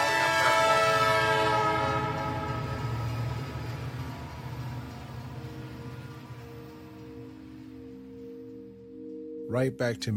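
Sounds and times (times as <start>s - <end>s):
subway train horn blaring a long sustained chord: 0.0s - 6.9s
moving subway train rumbling in Queens: 0.0s - 9.2s
speech: 9.5s - 10.1s.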